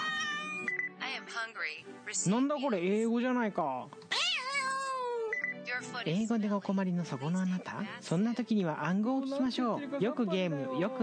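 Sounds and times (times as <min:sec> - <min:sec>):
cat meowing in greeting: 0:00.0 - 0:00.7, 0:04.1 - 0:05.4
speech: 0:01.4 - 0:04.1, 0:05.8 - 0:11.0.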